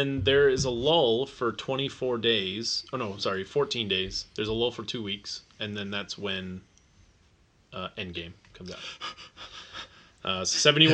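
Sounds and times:
speech: 0.0 - 6.7, 7.7 - 10.9
person panting with heavy excited breaths: 8.8 - 10.1.

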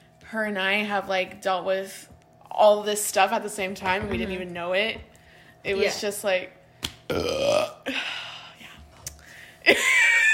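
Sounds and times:
speech: 0.3 - 8.0
trailing voice sounds: 5.7 - 6.1
loud croaking burp: 7.1 - 7.9.

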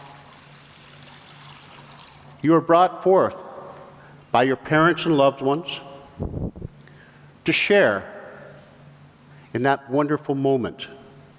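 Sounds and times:
water poured into a baptismal font: 0.0 - 2.4
speech: 2.4 - 3.4, 4.3 - 6.4, 7.4 - 8.1, 9.5 - 11.0.

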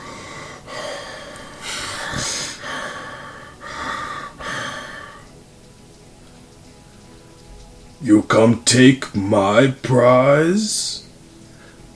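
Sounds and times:
heavy rasping breathing: 0.0 - 5.3
speech: 8.0 - 11.0.

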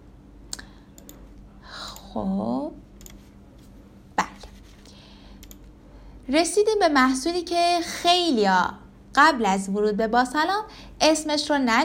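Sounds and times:
crisp computer mouse clicks: 0.5 - 2.1, 3.0 - 3.3, 5.4 - 5.7
speech: 2.1 - 2.8, 6.3 - 11.8.

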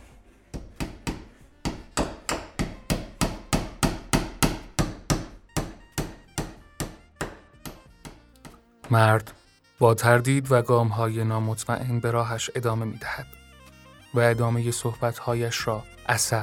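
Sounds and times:
heavy sledgehammer pounding a wall in a bazaar: 0.6 - 8.2
speech: 8.9 - 13.4, 14.1 - 16.4.

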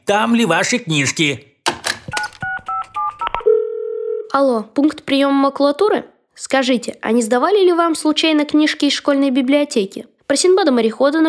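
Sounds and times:
speech: 0.1 - 1.5, 4.4 - 11.2
phone button clicks: 1.7 - 2.5
phone keypad beeps dialing a number: 2.1 - 3.6
steady sustained telephone line tone: 2.2 - 4.4.

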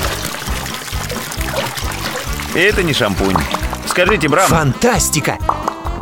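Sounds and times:
water sloshed and churned in a basin to whip up foam: 0.0 - 4.4
speech: 2.6 - 5.8.

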